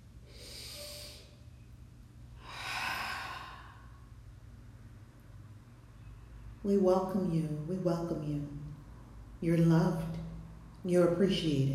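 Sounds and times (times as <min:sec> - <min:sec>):
slow deep breath: 0:00.2 - 0:01.4, 0:02.4 - 0:04.2
speech: 0:06.6 - 0:08.6, 0:09.4 - 0:10.2, 0:10.8 - 0:11.7.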